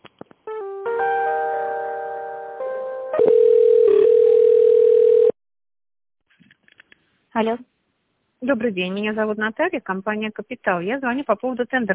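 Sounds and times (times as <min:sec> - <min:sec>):
steady electronic telephone tones while a call is transferred to a specialist: 0:03.1 - 0:05.4
speech: 0:07.4 - 0:07.7, 0:08.4 - 0:11.9.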